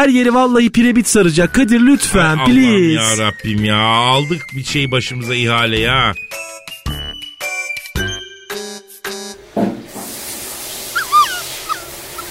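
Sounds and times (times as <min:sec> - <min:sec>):
speech: 0:00.0 - 0:06.4
dog whining and yipping: 0:10.9 - 0:12.2.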